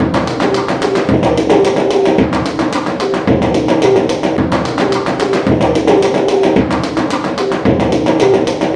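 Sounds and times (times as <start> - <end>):
Japanese drums playing: 0.0 - 8.7.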